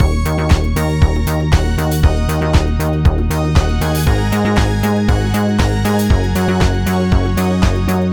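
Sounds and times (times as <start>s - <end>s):
synthesizer bass: 0.0s - 8.1s.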